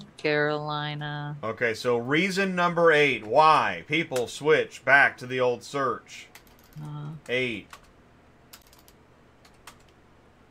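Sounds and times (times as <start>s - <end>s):
low hum: 0.0s - 10.4s
speech: 0.2s - 7.8s
typing on a computer keyboard: 6.3s - 7.9s, 8.5s - 10.0s.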